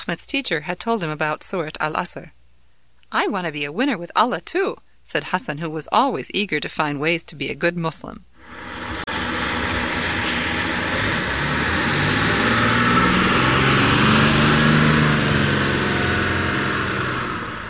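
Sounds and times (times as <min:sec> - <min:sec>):
speech: 0:00.1 - 0:02.4, 0:03.1 - 0:08.8
bus engine drone pulling up at a bus stop: 0:08.4 - 0:17.6
road noise hiss: 0:08.4 - 0:17.6.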